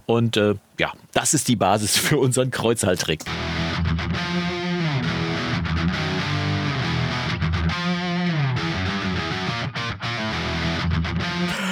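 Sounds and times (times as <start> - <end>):
speech: 0.1 - 3.6
two Telecaster electric guitars strumming chords and picking bending notes: 3.4 - 11.4.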